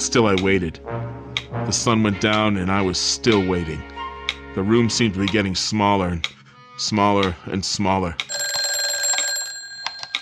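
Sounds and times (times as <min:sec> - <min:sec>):
speech: 0:00.0 - 0:03.9, 0:04.5 - 0:08.4
telephone ringing with electronic trill: 0:08.3 - 0:10.2.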